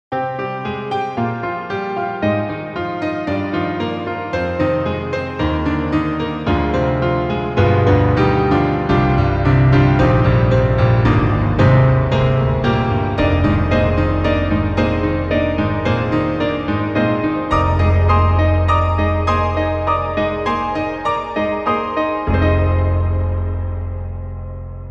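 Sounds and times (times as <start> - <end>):
grand piano: 0.1 - 24.8.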